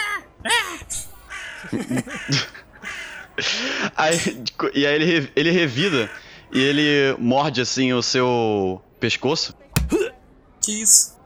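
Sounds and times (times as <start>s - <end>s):
person imitating crow caws: 0.0s - 3.2s
laughter: 0.0s - 7.0s
speech: 1.6s - 2.6s, 3.4s - 9.6s, 10.6s - 11.2s.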